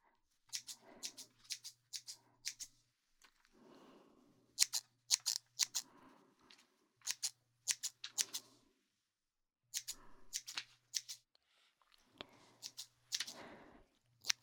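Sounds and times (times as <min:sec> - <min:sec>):
scissors snipping: 0:00.5 - 0:02.7, 0:04.6 - 0:05.8, 0:07.0 - 0:08.4, 0:09.8 - 0:11.2, 0:12.6 - 0:13.4, 0:14.2 - 0:14.4.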